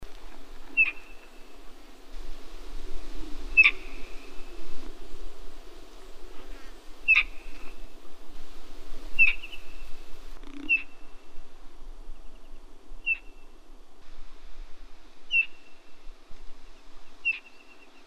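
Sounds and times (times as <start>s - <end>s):
black-shouldered kite calling: 0.0s - 11.2s.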